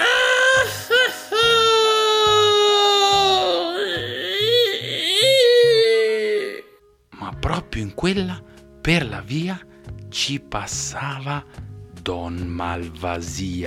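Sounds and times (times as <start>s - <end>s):
girl bursting into loud crying with wailing sobs: 0.0s - 6.8s
speech: 7.9s - 13.6s.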